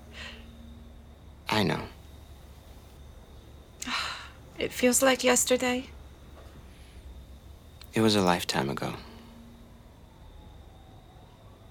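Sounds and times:
speech: 1.6s - 2.0s, 4.6s - 6.0s, 8.0s - 9.1s
emergency vehicle sirens wailing: 8.9s - 11.6s.

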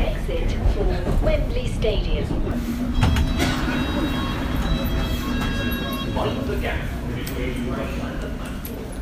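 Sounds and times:
London Underground train slowing into a station: 0.0s - 9.0s
speech: 1.2s - 3.2s, 6.2s - 8.2s
underground train brakes whining faintly: 2.9s - 7.5s
underground train doors sliding open: 2.9s - 7.6s.

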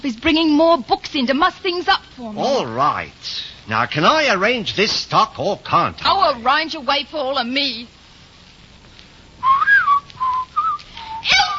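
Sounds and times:
speech: 0.0s - 8.0s
person whistling a short wandering tune: 9.4s - 11.3s.

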